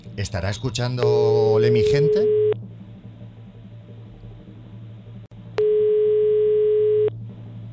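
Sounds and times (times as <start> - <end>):
speech: 0.2 - 2.4
quiet telephone line noise: 0.9 - 7.7
mid-pitched telephone ringback tone while a call is being dialed: 5.6 - 7.1.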